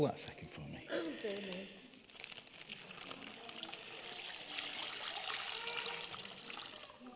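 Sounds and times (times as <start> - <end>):
speech: 0.0 - 1.9
water trickling into a bag: 0.9 - 7.1.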